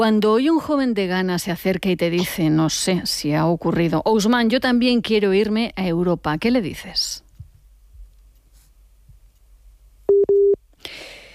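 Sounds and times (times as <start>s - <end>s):
speech: 0.0s - 7.2s
telephone busy tone after a call cuts off: 10.1s - 10.6s.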